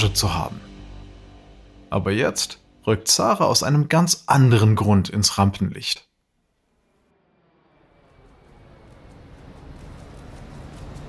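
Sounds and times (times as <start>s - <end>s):
speech: 0.0s - 0.7s, 1.9s - 6.1s
airplane jet engine roar at an airport: 7.4s - 11.0s.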